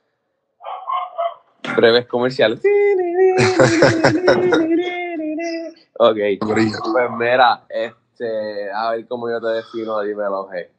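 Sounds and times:
dogs barking excitedly: 0.6s - 1.5s
speech: 1.8s - 10.7s
laughter: 3.4s - 5.0s.

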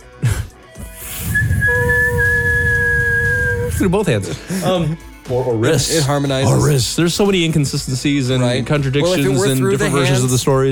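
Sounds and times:
person whistling breathy tones mimicking wind through holes: 0.9s - 3.9s
burst of noise: 1.0s - 3.8s
speech: 3.8s - 10.6s.

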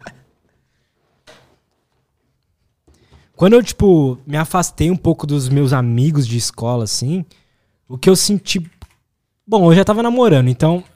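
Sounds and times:
person shifting in a chair, rustling and creaking: 0.0s - 3.4s
speech: 3.4s - 8.8s, 9.5s - 10.9s.

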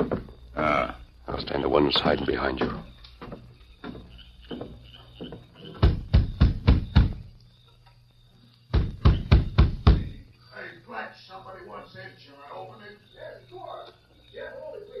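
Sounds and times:
quiet room hum: 0.0s - 14.9s
speech: 1.4s - 2.9s
firm knocking on a wooden door: 2.6s - 7.3s, 8.7s - 10.2s.

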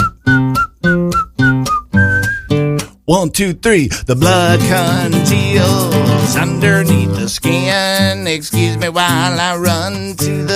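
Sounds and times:
person whistling a tune: 0.0s - 2.7s
speech: 3.1s - 10.5s.

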